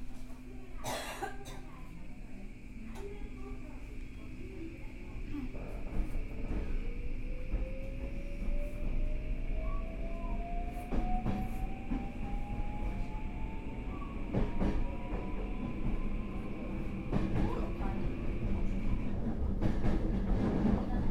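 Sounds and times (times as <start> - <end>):
electric train running heard from inside: 0.8 - 21.0
electric train motor whine rising in pitch: 4.4 - 19.2.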